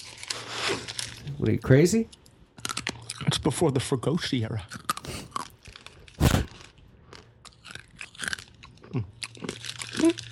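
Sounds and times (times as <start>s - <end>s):
person biting and chewing old hard gum from a baseball card pack: 0.0s - 1.4s, 2.1s - 3.6s, 4.6s - 10.2s
speech: 1.4s - 2.2s, 3.4s - 4.8s.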